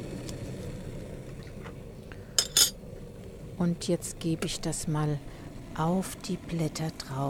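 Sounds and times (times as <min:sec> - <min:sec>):
water boiling in a kettle for making organic tea: 0:00.0 - 0:07.2
crockery clinking: 0:02.4 - 0:02.8
speech: 0:03.6 - 0:07.2.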